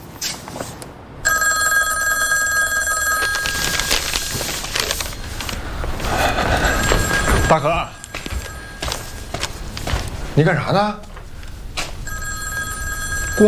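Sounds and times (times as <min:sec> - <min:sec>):
busy noise and clatter: 0:00.0 - 0:13.4
telephone ringing on an outgoing call: 0:01.2 - 0:10.6, 0:11.5 - 0:13.4
speech: 0:07.5 - 0:08.0, 0:10.4 - 0:11.1.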